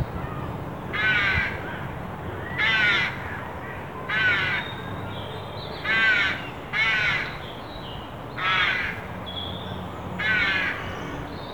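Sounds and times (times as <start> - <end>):
carrion crow Corvus corone giving harsh rasping caws: 0.2 - 4.8, 5.8 - 7.4, 8.4 - 9.1, 10.2 - 11.1.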